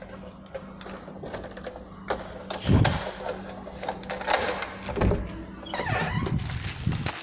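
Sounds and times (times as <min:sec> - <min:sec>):
low steady hum: 0:00.0 - 0:07.2
plastic bag rustling and crinkling, handled at a door: 0:06.1 - 0:07.2.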